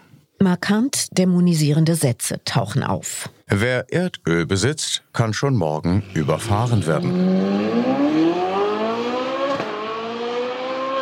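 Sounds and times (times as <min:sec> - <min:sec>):
speech: 0:00.4 - 0:08.3
car engine accelerating: 0:05.9 - 0:11.0.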